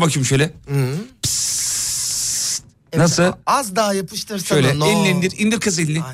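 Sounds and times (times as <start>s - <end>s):
speech: 0.0s - 1.4s, 3.0s - 6.1s
aerosol hiss of hair spray being sprayed: 1.2s - 2.7s.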